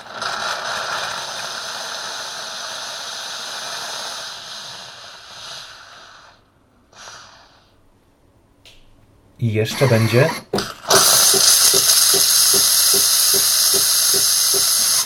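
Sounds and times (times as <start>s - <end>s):
steam hissing through a coffee machine milk frother hose: 0.0s - 7.8s, 9.7s - 15.0s
speech: 9.4s - 10.8s
coffee machine pump-like thumping ticking: 10.4s - 15.0s.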